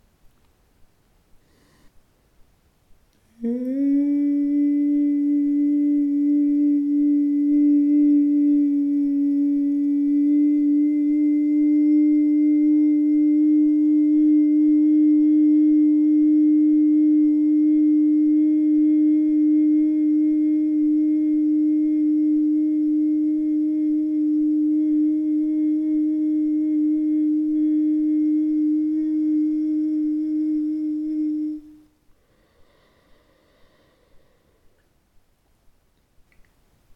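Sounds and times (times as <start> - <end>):
chakra meditation tone: 3.3 - 32.0.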